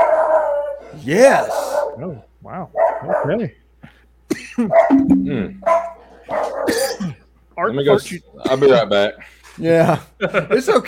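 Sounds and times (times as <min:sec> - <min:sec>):
dogs barking: 0:00.0 - 0:03.6, 0:04.6 - 0:07.1
speech: 0:01.0 - 0:03.6, 0:04.3 - 0:10.8.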